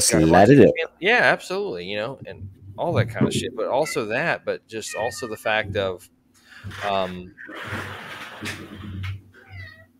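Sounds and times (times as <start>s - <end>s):
speech: 0.0s - 8.9s
cat meowing and yowling: 4.8s - 5.9s, 9.4s - 9.9s.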